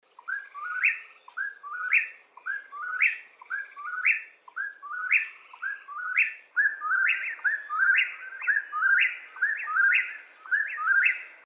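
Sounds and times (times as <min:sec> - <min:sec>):
whip-poor-will calling: 0:00.1 - 0:11.4.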